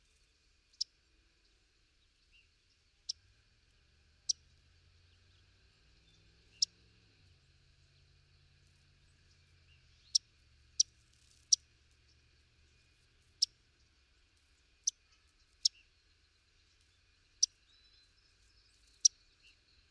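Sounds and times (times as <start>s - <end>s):
Yellow-rumped Warbler Setophaga coronata singing: 2.2s - 19.8s.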